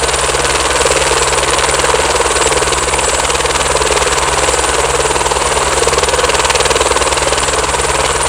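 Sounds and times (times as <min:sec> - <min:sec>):
helicopter blade vortex: 0:00.0 - 0:08.2.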